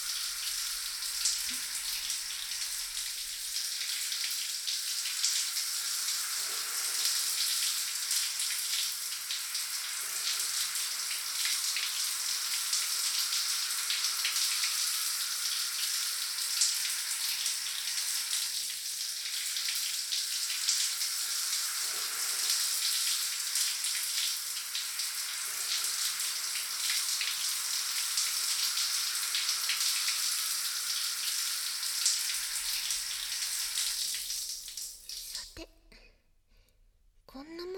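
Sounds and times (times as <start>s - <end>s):
hot water streaming over a person's hair before shampooing: 0.0s - 35.6s.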